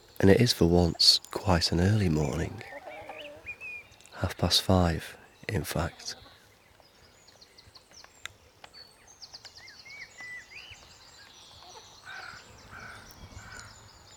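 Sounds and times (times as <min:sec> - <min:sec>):
dawn chorus of many birds calling and chirping in a garden: 0:00.0 - 0:14.1
speech: 0:00.2 - 0:02.8, 0:04.2 - 0:06.2
harsh crow-like caws in a garden at dawn: 0:12.0 - 0:13.7.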